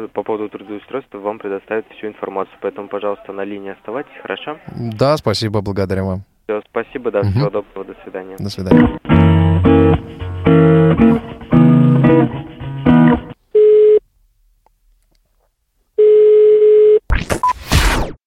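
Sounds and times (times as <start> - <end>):
speech: 0.0 - 11.1
tinny hold music on a phone call: 8.4 - 13.4
telephone beeps after call hangs up: 13.6 - 14.0, 16.0 - 17.6.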